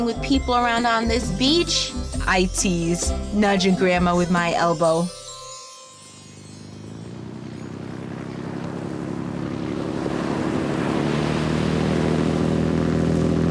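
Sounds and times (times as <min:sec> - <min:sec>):
speech: 0:00.0 - 0:05.2
snorkeling tour boat engine droning: 0:00.0 - 0:13.4
ocean waves washing against a boat: 0:06.9 - 0:13.4.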